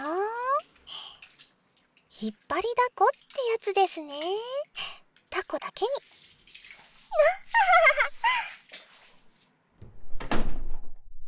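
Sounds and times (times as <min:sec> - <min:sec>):
speech: 0:02.2 - 0:06.2, 0:07.1 - 0:08.5
door creaking with a high squeaky whine: 0:09.8 - 0:11.2.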